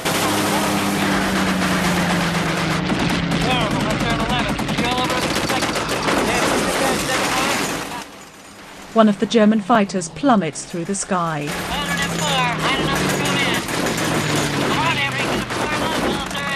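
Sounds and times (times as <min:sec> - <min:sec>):
aircraft turret machine guns firing at enemy fighters during an air battle: 0:00.0 - 0:08.0, 0:11.5 - 0:16.5
speech: 0:09.0 - 0:11.8.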